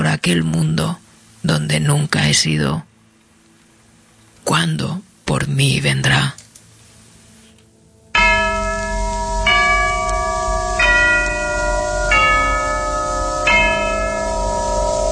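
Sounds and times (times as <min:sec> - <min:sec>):
speech: 0:00.2 - 0:02.9, 0:04.5 - 0:06.4
church bells tolling: 0:08.1 - 0:15.1.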